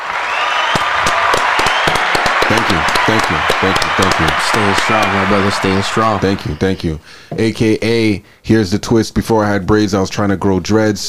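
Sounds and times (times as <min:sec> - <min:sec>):
crowd applauding: 0:00.0 - 0:07.0
speech: 0:02.5 - 0:11.0.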